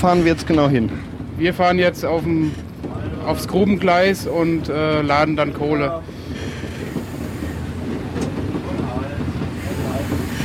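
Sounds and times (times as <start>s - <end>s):
speech: 0.0s - 6.2s
1934 express steam locomotive running on track: 0.0s - 10.4s
steam locomotive rhythmic wheel clatter: 0.0s - 10.4s
steam locomotive hiss: 6.4s - 7.8s, 9.5s - 10.4s.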